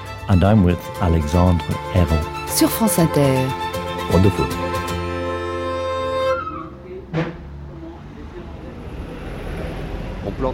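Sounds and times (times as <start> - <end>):
steady street rumble: 0.0 - 10.5
speech: 0.3 - 4.8
double-decker buses passing by in Dublin Ireland: 1.7 - 10.5
sharp clunk: 7.1 - 7.5.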